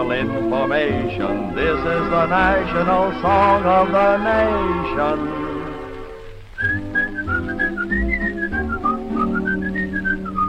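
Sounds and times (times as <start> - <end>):
speech: 0.0 - 5.4
warm instrumental accompaniment: 0.0 - 10.4
person whistling a bouncy tune: 6.6 - 10.4.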